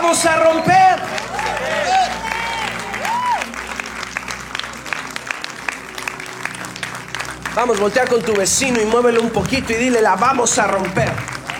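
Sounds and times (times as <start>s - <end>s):
people cheering and shouting: 0.0s - 3.8s
crowd applauding: 0.0s - 11.5s
speech: 0.1s - 0.8s, 7.6s - 11.3s
high whoops: 1.2s - 3.6s.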